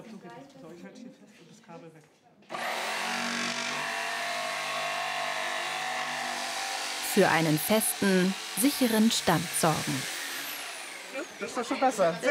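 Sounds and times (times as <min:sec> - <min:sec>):
speech: 0:00.3 - 0:02.7, 0:07.2 - 0:10.1, 0:11.4 - 0:12.3
electric circular saw whirring with a high-pitched drone: 0:02.5 - 0:12.1.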